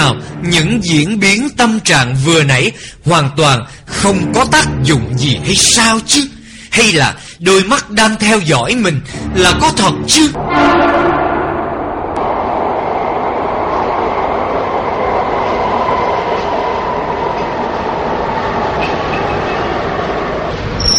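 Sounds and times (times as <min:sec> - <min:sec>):
speech: 0:00.0 - 0:11.3
train arriving at a station with rumble and rolling clatter: 0:11.5 - 0:20.9.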